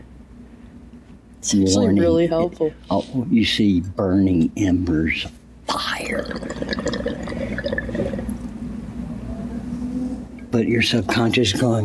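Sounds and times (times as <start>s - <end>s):
speech: 1.4s - 7.0s, 10.6s - 11.8s
water bubbling inside a bong during a hit: 6.0s - 8.4s.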